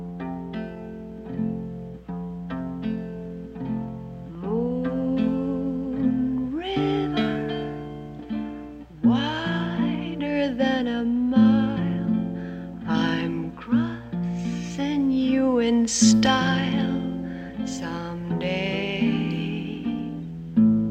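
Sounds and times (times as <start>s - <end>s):
soft accompaniment: 0.0s - 20.8s
woman singing a slow gentle film ballad: 4.3s - 8.1s, 8.9s - 20.3s.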